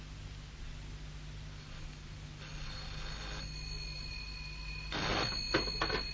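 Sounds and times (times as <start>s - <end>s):
steady low electrical hum: 0.0s - 6.1s
telephone bell ringing as a phone call is made: 2.5s - 6.1s.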